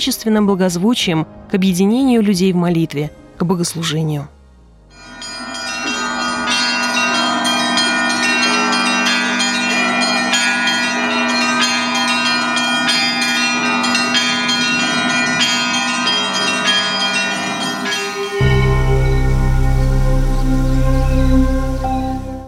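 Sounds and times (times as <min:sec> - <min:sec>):
speech: 0:00.0 - 0:04.4
cathedral bells pealing: 0:04.9 - 0:22.4.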